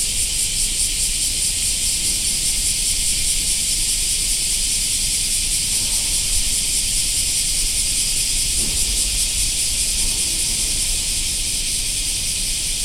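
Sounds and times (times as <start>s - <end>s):
black cicadas giving a high-pitched droning hiss: 0.0s - 12.8s.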